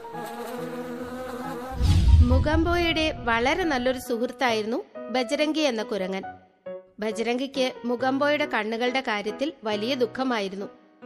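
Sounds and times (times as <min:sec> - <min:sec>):
swarm of bees buzzing from a broken beehive: 0:00.0 - 0:01.8
speech: 0:00.1 - 0:00.8, 0:02.2 - 0:06.4, 0:07.0 - 0:10.8
heavier low rumble: 0:01.7 - 0:04.0.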